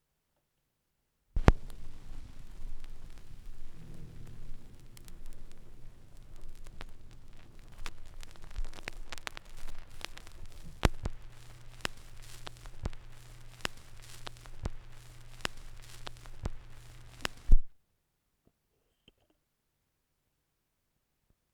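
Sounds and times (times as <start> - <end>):
vinyl record noise: 1.4 - 17.7.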